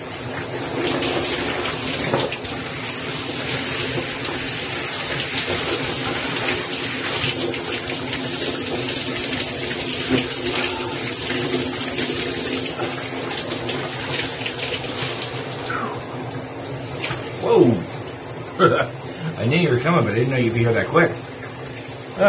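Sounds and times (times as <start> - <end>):
shower water spraying: 0.0 - 22.2
speech: 19.8 - 21.2.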